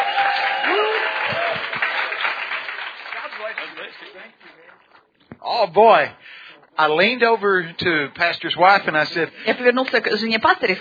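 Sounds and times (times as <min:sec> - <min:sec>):
voices cheering: 0:00.0 - 0:03.8
crowd applause: 0:00.0 - 0:04.7
speech: 0:05.6 - 0:06.2, 0:06.8 - 0:10.7.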